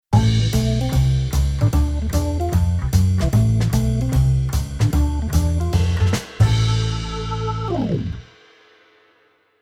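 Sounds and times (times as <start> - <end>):
jazz on keyboard organ: 0.2 - 8.2.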